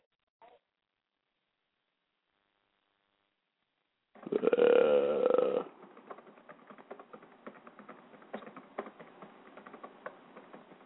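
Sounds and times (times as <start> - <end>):
throaty burp-like noise: 4.2 - 5.8
typing on a laptop keyboard: 4.3 - 10.8.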